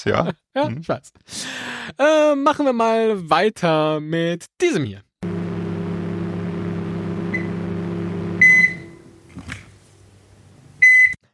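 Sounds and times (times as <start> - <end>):
speech: 0.0 - 5.1
microwave oven electronic beep when food is done: 5.2 - 9.3, 10.8 - 11.2
microwave oven humming: 5.2 - 11.0.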